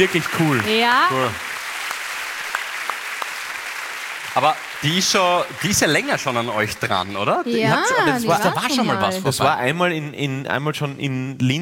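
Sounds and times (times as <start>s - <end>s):
speech: 0.0s - 1.5s, 4.4s - 11.5s
audience applause: 0.0s - 9.2s.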